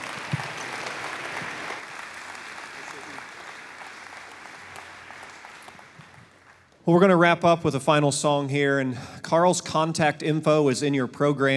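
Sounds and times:
crowd applauding: 0.0s - 6.8s
speech: 6.9s - 11.5s.

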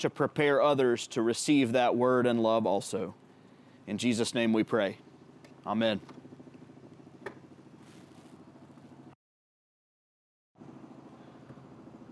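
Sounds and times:
speech: 0.0s - 3.2s, 3.9s - 6.2s
helicopter passing during a church service: 0.9s - 9.2s, 10.6s - 12.1s.

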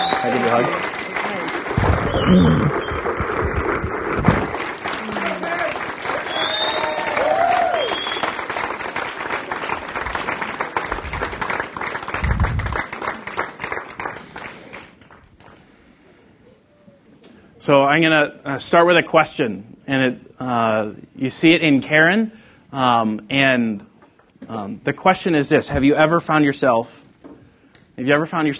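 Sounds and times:
scattered whoops and shouts: 0.0s - 0.8s, 5.0s - 8.2s
large crowd cheering with whoops and shouts: 0.0s - 3.6s, 4.2s - 14.5s
large crowd applauding: 0.0s - 15.6s
speech: 0.2s - 1.0s, 2.0s - 3.6s, 17.6s - 23.9s, 24.5s - 27.0s, 28.0s - 28.5s.

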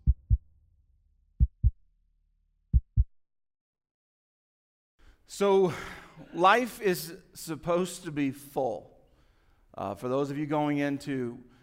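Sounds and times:
heartbeat thumping: 0.0s - 0.5s, 1.4s - 1.8s, 2.7s - 3.2s
speech: 5.3s - 8.9s, 9.8s - 11.5s.

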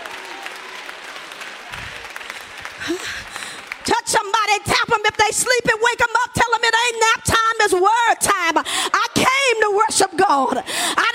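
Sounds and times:
congregation clapping: 0.0s - 3.9s
speech: 2.8s - 3.4s, 4.1s - 8.9s, 9.6s - 11.1s.

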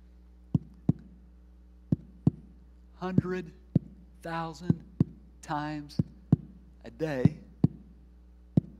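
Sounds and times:
heartbeat lub-dub thumps: 0.5s - 1.2s, 1.9s - 8.7s
speech: 3.0s - 3.6s, 4.2s - 6.1s, 6.9s - 7.4s.

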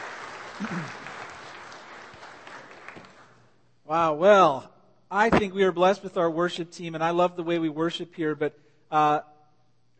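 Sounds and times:
audience applause: 0.0s - 3.4s
speech: 0.6s - 1.0s, 3.9s - 9.3s
brief vocal murmur or cheer: 0.6s - 1.2s.

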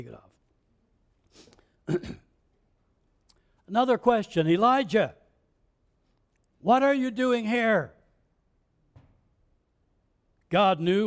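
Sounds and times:
speech: 0.0s - 0.4s, 1.3s - 2.2s, 3.7s - 5.2s, 6.6s - 8.0s, 10.5s - 11.0s
soft throat clearing: 1.6s - 2.4s
harsh cough-like burst: 1.8s - 2.5s.

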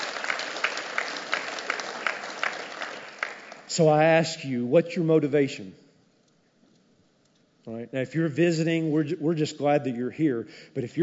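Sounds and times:
dense scattered applause: 0.0s - 4.0s
congregation clapping in a steady rhythm: 0.0s - 4.2s
speech: 3.8s - 5.8s, 7.7s - 11.0s.

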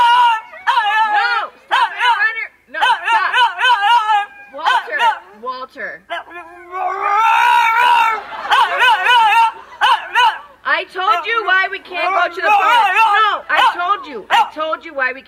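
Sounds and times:
dog howling and whining in drawn-out yowls: 0.0s - 5.3s, 6.1s - 10.5s, 12.0s - 14.5s
laughter: 6.8s - 14.2s.

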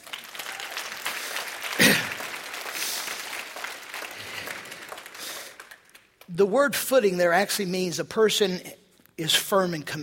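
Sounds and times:
audience applause: 0.0s - 6.2s
speech: 6.4s - 10.0s.

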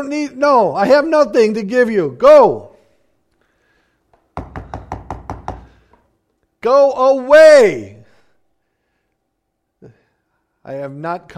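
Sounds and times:
speech: 0.0s - 2.7s, 6.6s - 8.0s, 10.6s - 11.3s
loud knocking on a door: 4.3s - 6.0s.

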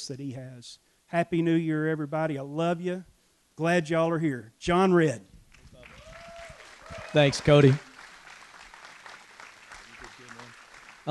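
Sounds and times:
speech: 0.0s - 5.4s, 7.1s - 7.9s
single person clapping: 5.6s - 11.0s.

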